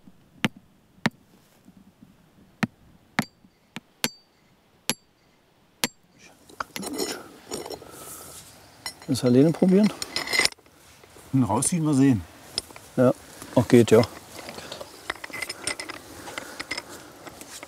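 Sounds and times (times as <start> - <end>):
small hammer striking metal: 3.2 - 3.4, 4.0 - 5.1, 5.8 - 6.0
scraping and clinking: 6.2 - 10.7, 12.5 - 13.0, 13.8 - 17.6
speech: 9.1 - 10.1, 11.3 - 12.3, 13.0 - 14.2.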